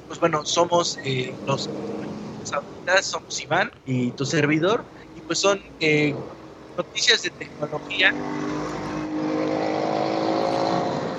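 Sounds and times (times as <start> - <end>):
speech: 0.1 - 8.6
motorcycle engine revving as it passes: 1.1 - 2.5, 7.5 - 11.1.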